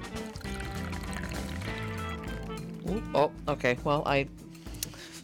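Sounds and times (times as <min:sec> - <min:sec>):
coffee glugging and splashing from a thermos into a cup: 0:00.2 - 0:03.0
speech: 0:02.9 - 0:04.4.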